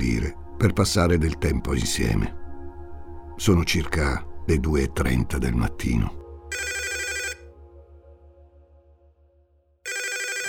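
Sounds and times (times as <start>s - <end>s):
speech: 0.3s - 2.4s, 3.4s - 6.7s
telephone ringing in an apartment: 6.5s - 7.4s, 9.9s - 10.4s.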